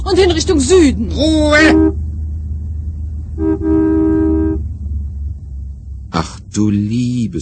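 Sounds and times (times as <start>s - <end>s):
low rumble of idling traffic on the Autobahn: 0.0s - 7.4s
speech: 0.1s - 2.0s, 6.2s - 7.4s
car horn honking in a traffic jam on the Autobahn: 1.5s - 2.1s, 3.3s - 4.8s.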